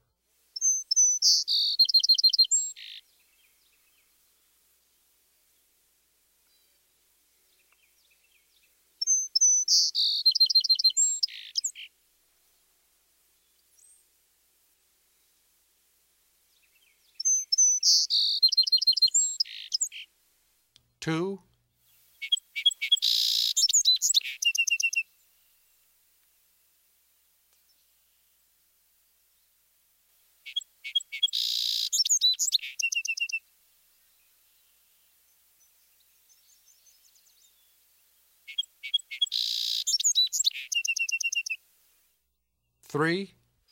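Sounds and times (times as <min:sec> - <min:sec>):
song sparrow song variation: 0:00.6 - 0:04.1, 0:07.4 - 0:11.9, 0:16.5 - 0:20.1, 0:22.2 - 0:25.1, 0:30.4 - 0:33.4, 0:38.5 - 0:41.6
speech: 0:21.1 - 0:21.5, 0:43.0 - 0:43.4.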